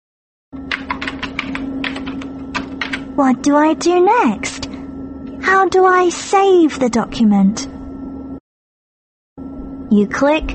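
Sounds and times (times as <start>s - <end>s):
typing on a computer keyboard: 0.6s - 3.1s
steady low hum: 0.6s - 8.4s, 9.4s - 10.5s
speech: 3.2s - 4.6s, 5.4s - 7.8s, 9.4s - 10.5s.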